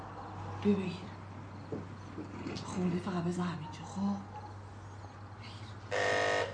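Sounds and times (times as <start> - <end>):
speech: 0.6 - 1.1, 2.8 - 4.3
doorbell buzzer ringing at a house door: 5.9 - 6.5.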